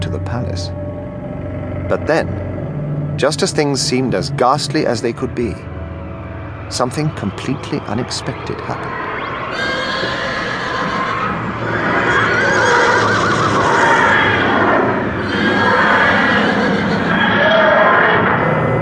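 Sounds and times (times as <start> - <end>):
speech: 0.3 - 0.8, 1.9 - 2.5, 3.2 - 5.7, 6.7 - 10.2
carriage horses whinnying and screaming in panic while rearing: 9.4 - 18.5.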